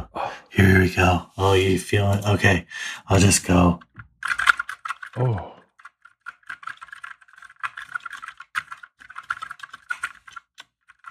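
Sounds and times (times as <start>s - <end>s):
speech: 0.6s - 4.4s, 5.2s - 5.5s
typing on a mechanical keyboard with silent tactile switches: 3.8s - 11.0s.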